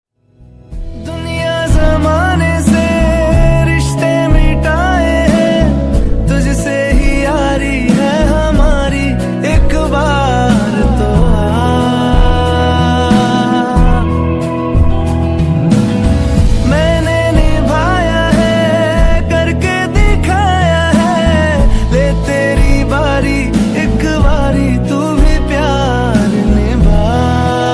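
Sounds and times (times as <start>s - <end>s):
Hindi romantic instrumental music tone: 0.2s - 27.7s.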